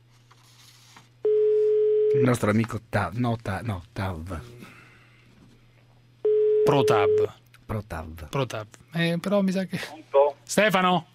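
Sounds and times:
telephone line tone while a call is placed: 0:01.2 - 0:02.3, 0:06.2 - 0:07.3
speech: 0:02.2 - 0:04.8, 0:06.7 - 0:11.1
voice over telephone beep: 0:06.6 - 0:07.3.

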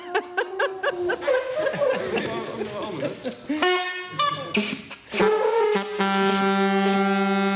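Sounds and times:
people laughing: 0:00.0 - 0:04.8
people chattering: 0:00.0 - 0:04.9
homemade horn buzzing toots: 0:03.5 - 0:07.5.

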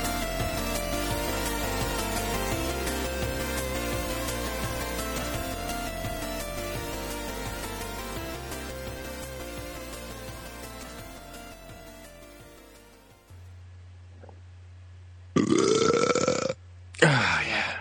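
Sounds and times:
music: 0:00.0 - 0:13.6
low steady hum: 0:13.3 - 0:17.7
person burping: 0:15.4 - 0:17.4.

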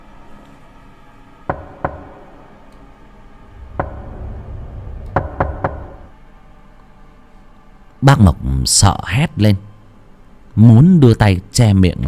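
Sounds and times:
sharp knocks on the door of a village communal house: 0:01.5 - 0:02.4, 0:03.7 - 0:04.4, 0:05.1 - 0:06.1
quiet low rumble: 0:01.5 - 0:07.3
speech: 0:08.0 - 0:09.7, 0:10.6 - 0:12.0.

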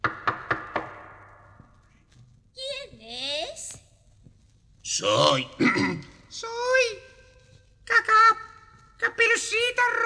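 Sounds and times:
knocking on a wooden door: 0:00.0 - 0:01.4
speech: 0:05.0 - 0:07.0, 0:09.0 - 0:10.0.

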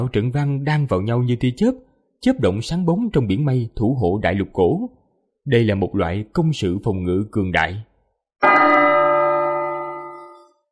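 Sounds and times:
speech: 0:00.0 - 0:08.6
large golden bell ringing with a single strike: 0:08.4 - 0:10.6.

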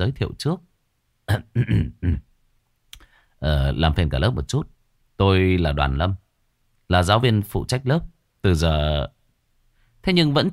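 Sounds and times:
speech: 0:00.0 - 0:00.7, 0:01.3 - 0:02.3, 0:03.4 - 0:06.2, 0:06.9 - 0:09.2, 0:10.0 - 0:10.5
man clearing his throat awkwardly: 0:01.3 - 0:02.3.

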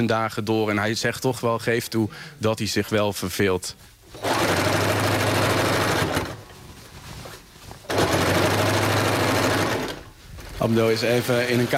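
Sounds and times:
speech: 0:00.0 - 0:04.7, 0:10.6 - 0:11.7
sewing machine worked by a tailor in a small room: 0:04.1 - 0:06.7, 0:07.8 - 0:10.2.

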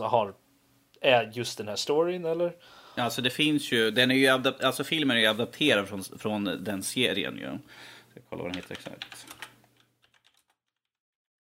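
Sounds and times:
speech: 0:00.0 - 0:00.4, 0:01.0 - 0:09.3
faint typing on a computer keyboard: 0:08.5 - 0:11.0.

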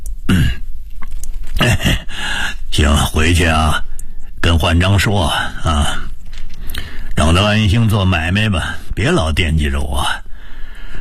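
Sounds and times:
old man coughing while lying in bed: 0:00.3 - 0:00.7
speech: 0:02.8 - 0:06.0, 0:07.2 - 0:10.2.

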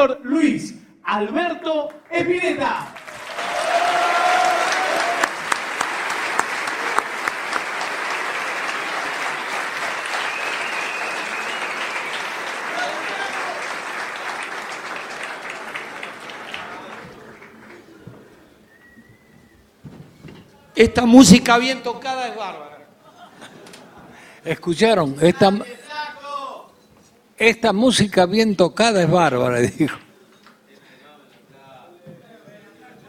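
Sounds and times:
speech: 0:00.0 - 0:03.5, 0:20.8 - 0:22.7, 0:24.4 - 0:25.8, 0:27.4 - 0:30.0
audience applause at a tribute event: 0:02.9 - 0:18.3
laughter: 0:23.0 - 0:24.2.

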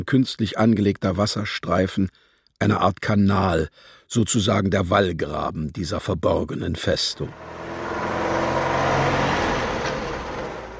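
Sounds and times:
speech: 0:00.0 - 0:07.6
car speeding around a square, engine and road roar: 0:06.9 - 0:10.7.

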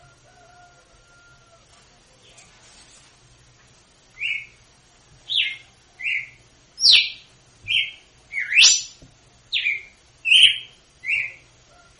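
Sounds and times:
faint low hum: 0:00.0 - 0:11.9
female red-cowled cardinal singing whistled song: 0:04.2 - 0:04.6, 0:05.3 - 0:11.4.

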